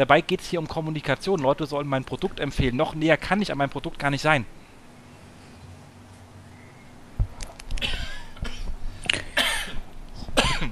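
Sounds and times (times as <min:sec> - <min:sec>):
speech: 0:00.0 - 0:04.6
person coughing in a harsh rasping coughing fit: 0:07.8 - 0:09.8, 0:10.4 - 0:10.6
throaty clearing sounds: 0:07.8 - 0:09.8, 0:10.4 - 0:10.6.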